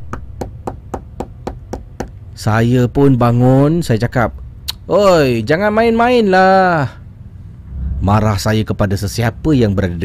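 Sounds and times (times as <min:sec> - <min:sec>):
low rumble: 0:00.0 - 0:10.0
knocking on a door: 0:00.1 - 0:02.1
speech: 0:02.4 - 0:07.0, 0:08.0 - 0:10.0.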